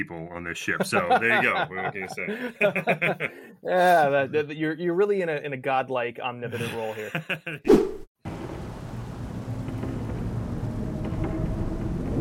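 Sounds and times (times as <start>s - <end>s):
speech: 0.0s - 8.0s
laughter: 0.7s - 4.0s, 6.4s - 7.7s
steady rain pouring: 8.3s - 12.1s.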